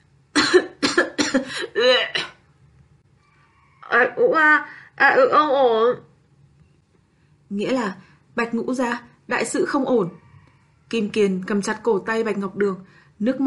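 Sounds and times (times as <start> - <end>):
person coughing: 0.4 - 2.4
speech: 1.3 - 2.0, 4.0 - 6.1, 7.5 - 10.2, 10.9 - 13.4.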